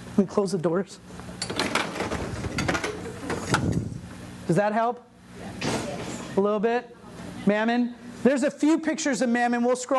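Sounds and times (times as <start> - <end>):
speech: 0.2 - 1.7, 4.5 - 5.1, 6.4 - 9.9
doors rattling and knocking as they are shut: 1.5 - 3.7.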